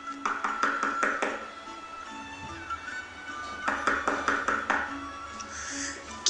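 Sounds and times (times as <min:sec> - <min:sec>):
sharp knocks on a door: 0:00.2 - 0:01.4, 0:03.6 - 0:04.9.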